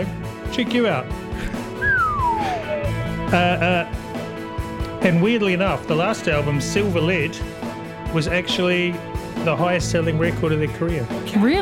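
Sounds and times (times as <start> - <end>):
speech: 0.0 - 1.2, 3.3 - 4.0, 5.0 - 11.5
person whistling a long note into a microphone: 1.8 - 3.5.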